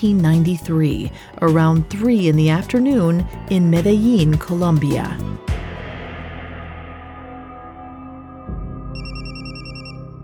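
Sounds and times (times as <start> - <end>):
speech: 0.0 - 5.6
telephone ringing in rapid electronic trills: 9.0 - 10.1.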